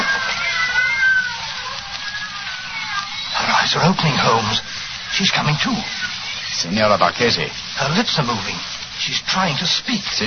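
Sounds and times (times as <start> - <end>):
several cats meowing in a wavering cry: 0.0 - 7.9
speech: 3.7 - 10.2.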